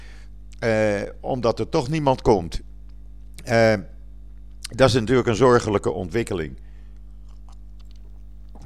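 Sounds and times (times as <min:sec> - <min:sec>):
low steady hum: 0:00.0 - 0:08.6
speech: 0:00.6 - 0:02.7, 0:03.4 - 0:03.9, 0:04.7 - 0:06.6
person sipping water: 0:06.9 - 0:08.6.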